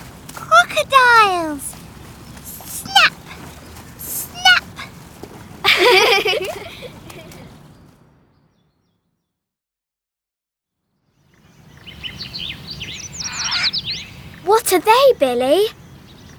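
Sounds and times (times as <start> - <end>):
birds chirping: 0.0 - 9.0, 11.4 - 16.3
speech: 0.8 - 1.7, 14.8 - 15.8
laughter: 4.0 - 4.9, 5.5 - 7.6.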